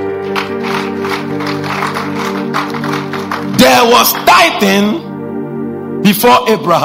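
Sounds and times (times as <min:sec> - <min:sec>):
audience clapping in a large room: 0:00.0 - 0:04.7
speech: 0:03.9 - 0:05.1, 0:06.0 - 0:06.8.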